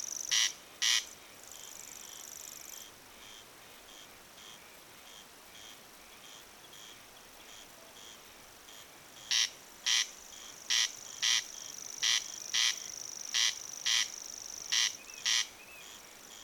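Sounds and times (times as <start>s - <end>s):
corn crake rasping call, Crex crex: 0.0s - 1.1s, 9.3s - 10.1s, 10.7s - 16.0s.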